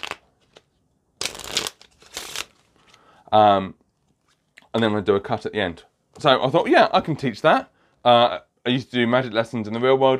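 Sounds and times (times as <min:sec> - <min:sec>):
playing cards riffle shuffled in the hands: 0:00.0 - 0:03.0
speech: 0:03.3 - 0:03.8, 0:04.7 - 0:10.1.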